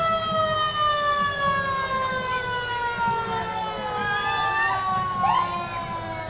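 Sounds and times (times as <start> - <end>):
classic fire truck siren wailing: 0.0 - 6.2
faint crowd and street noise: 0.0 - 6.2.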